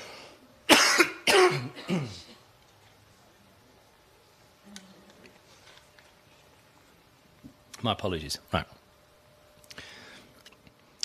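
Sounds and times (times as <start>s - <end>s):
throaty throat clearing: 0.7s - 2.4s
person coughing loud and close: 0.7s - 2.5s
speech: 7.8s - 8.8s.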